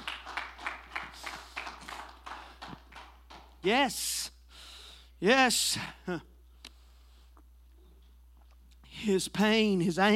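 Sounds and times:
group of people clapping in worship: 0.0 - 3.8
speech: 3.6 - 4.3, 5.2 - 6.3, 9.0 - 10.1.

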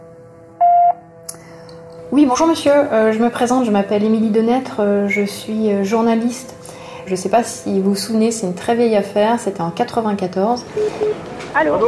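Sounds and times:
voicemail electronic beep: 0.6 - 1.0, 10.8 - 11.2
speech: 2.1 - 11.8.

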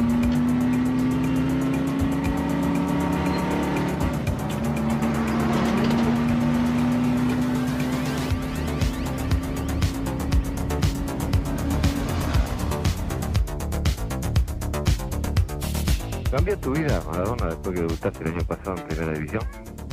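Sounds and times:
busy street traffic in Naples with vehicles revving and passing: 0.0 - 19.9
clattering activity: 5.3 - 6.2
speech: 16.5 - 19.6.

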